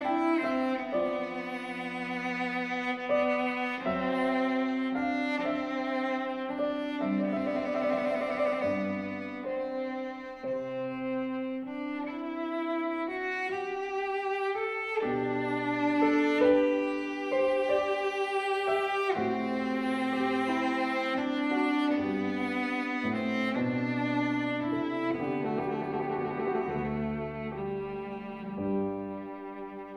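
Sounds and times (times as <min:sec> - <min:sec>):
adagio sonata in C major for cello and piano: 0:00.0 - 0:29.9.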